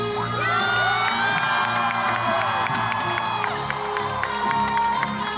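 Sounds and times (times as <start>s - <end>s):
audience high-pitched screaming and whooping: 0.1s - 3.9s
large audience cheering: 0.3s - 5.2s.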